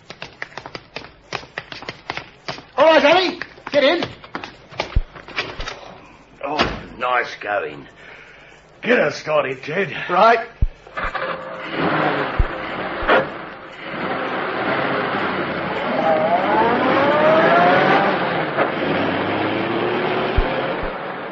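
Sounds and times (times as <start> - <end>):
speech: 2.8 - 4.2, 7.0 - 8.0, 8.8 - 11.1
car engine revving and accelerating away: 11.7 - 21.3
sharp knocks: 20.3 - 21.0.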